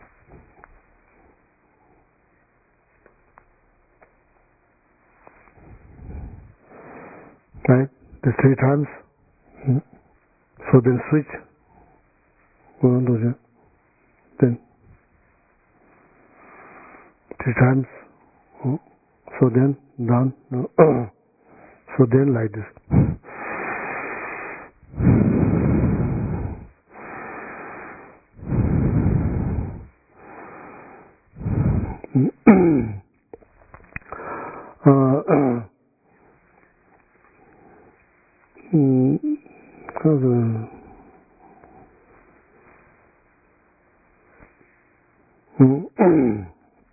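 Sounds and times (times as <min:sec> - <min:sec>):
quieter breathy voiced sounds: 0:05.2 - 0:13.7, 0:15.8 - 0:43.1, 0:45.5 - 0:46.9
forceful rushing breaths during a nine-round breathing meditation: 0:05.2 - 0:15.1, 0:15.7 - 0:19.1, 0:22.7 - 0:33.1, 0:34.0 - 0:43.3
speech: 0:07.7 - 0:09.0, 0:09.6 - 0:09.9, 0:10.7 - 0:11.5, 0:12.8 - 0:13.4, 0:14.4 - 0:14.6, 0:17.4 - 0:18.0, 0:18.6 - 0:21.2, 0:22.0 - 0:23.0.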